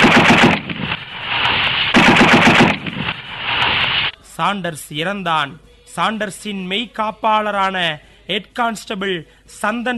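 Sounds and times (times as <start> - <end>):
gunshots fired from a gun at a man: 0.0 - 4.1
speech: 4.4 - 9.9.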